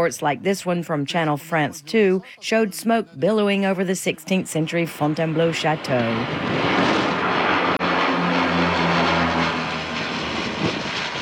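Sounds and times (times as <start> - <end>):
speech: 0.0 - 7.0
Canadair propeller firefighting plane flying overhead: 4.3 - 11.2.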